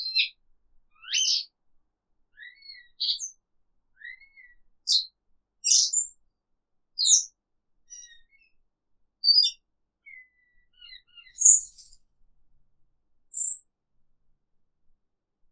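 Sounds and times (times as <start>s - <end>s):
exotic cage bird uttering varied high chirps: 2.4s - 3.3s, 4.0s - 6.1s, 7.0s - 7.3s, 7.9s - 8.5s, 9.2s - 12.0s, 13.3s - 13.6s.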